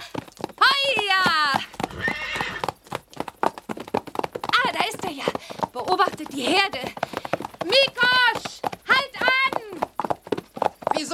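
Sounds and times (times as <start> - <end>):
clip-clopping hoofbeats of a wild mare: 0.0 - 11.1
wild mare whinnying while ridden bareback across the open Hungarian steppe: 1.2 - 2.8
speech: 5.8 - 7.0.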